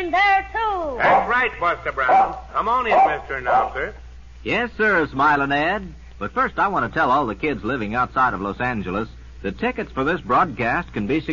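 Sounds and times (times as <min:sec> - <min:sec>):
speech: 0:00.0 - 0:11.3
dog barking: 0:01.0 - 0:01.4, 0:02.0 - 0:03.9.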